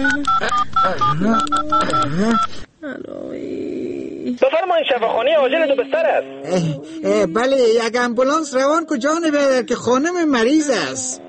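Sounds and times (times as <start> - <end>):
telephone keypad tones beeping as someone dials: 0.0 - 2.6
wavering voice-like sound: 0.0 - 4.4, 5.8 - 7.7, 10.9 - 11.2
speech: 0.0 - 11.2.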